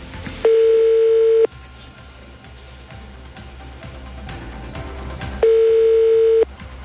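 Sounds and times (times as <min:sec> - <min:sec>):
phone line ringback tone: 0:00.4 - 0:01.6, 0:05.4 - 0:06.5.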